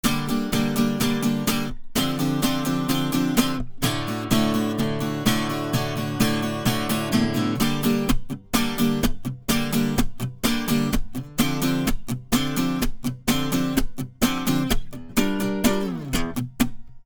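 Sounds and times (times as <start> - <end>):
subsonic acoustic guitar: 0.0 - 17.0.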